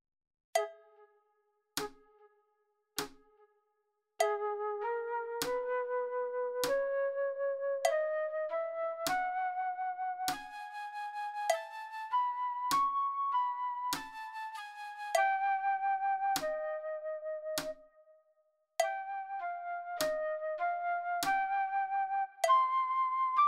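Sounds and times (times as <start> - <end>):
flute at medium level for practice playback: 4.2 - 18.2, 18.8 - 23.4.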